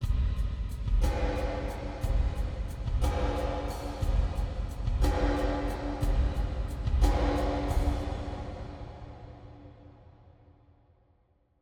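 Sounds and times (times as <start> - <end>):
drums with wet hall reverb: 0.0 - 9.7.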